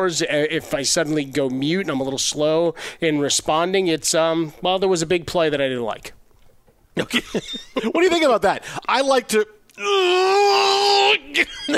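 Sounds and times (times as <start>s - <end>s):
speech: 0.0s - 6.2s, 7.0s - 11.7s
person letting out a sustained wailing cry: 9.8s - 11.7s.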